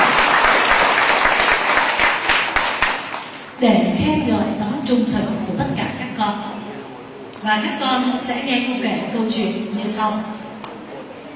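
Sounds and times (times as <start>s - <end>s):
children applauding at a teacher's request: 0.0s - 3.3s
speech: 3.6s - 6.5s, 7.4s - 10.4s.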